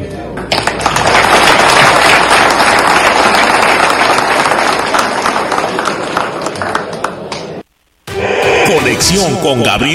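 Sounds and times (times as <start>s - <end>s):
assembly attendees applauding: 0.4s - 7.6s
speech: 9.1s - 9.9s.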